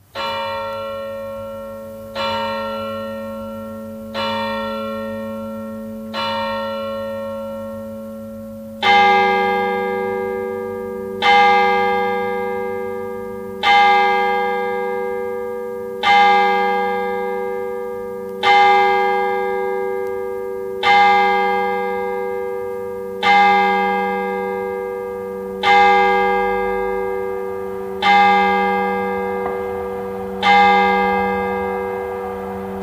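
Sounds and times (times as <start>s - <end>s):
church bells ringing at midnight in a village: 0.0s - 32.8s.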